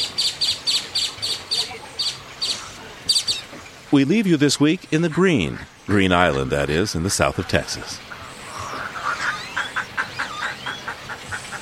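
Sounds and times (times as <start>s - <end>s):
wading birds squawking at a rookery: 0.0s - 3.5s, 4.9s - 11.6s
speech: 3.9s - 8.1s
high whistled cries of wading birds at a rookery: 8.5s - 10.9s.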